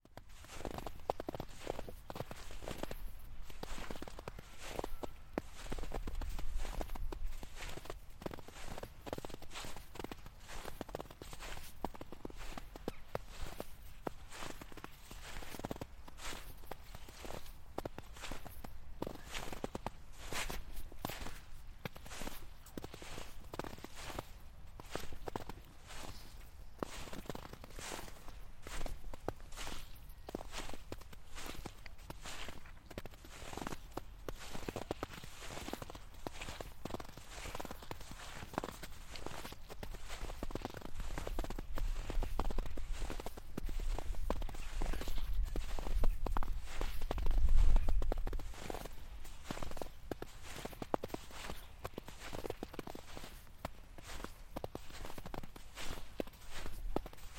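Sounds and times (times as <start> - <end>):
footsteps walking in snow in Bentham North Yorkshire UK: 0.2 - 57.3.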